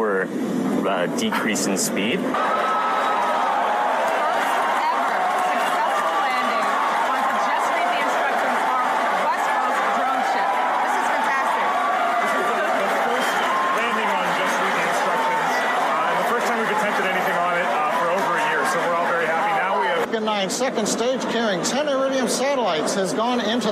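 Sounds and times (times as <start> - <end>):
speech: 0.2 - 2.8, 20.6 - 23.7
large crowd cheering: 2.2 - 20.1
excited shouts: 2.3 - 20.1
large crowd chattering: 2.3 - 23.7
crowd clapping: 3.6 - 19.6.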